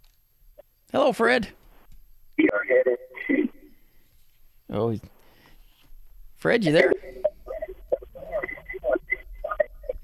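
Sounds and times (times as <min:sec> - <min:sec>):
speech: 0:00.9 - 0:01.6, 0:02.7 - 0:03.5, 0:04.7 - 0:05.2, 0:06.4 - 0:07.2
radio playing in a caller's background through a muffled phone line: 0:02.4 - 0:03.8, 0:06.4 - 0:10.0.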